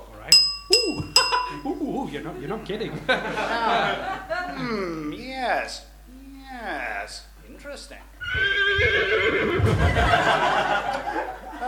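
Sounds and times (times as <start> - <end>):
laughter: 1.2 - 4.9, 9.5 - 11.6
speech: 2.1 - 5.9, 6.5 - 11.4
horse whinnying in a long shrill quavering neigh: 8.2 - 9.8.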